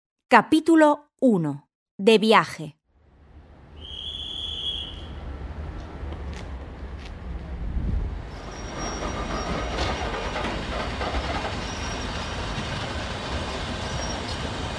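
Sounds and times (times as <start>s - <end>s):
speech: 0.3s - 2.8s
train wheels squealing as a train sets off: 3.8s - 5.2s, 8.3s - 14.7s
train rolling rumble and wheel noise from Palma de Mallorca toward Manacor: 4.3s - 14.7s.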